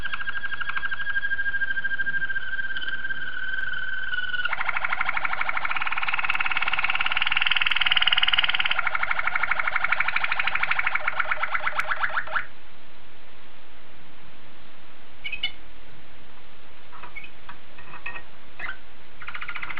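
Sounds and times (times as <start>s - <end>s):
Waterslager canary singing a fast rattling roll: 0.0s - 12.5s, 15.2s - 15.6s, 17.0s - 19.7s.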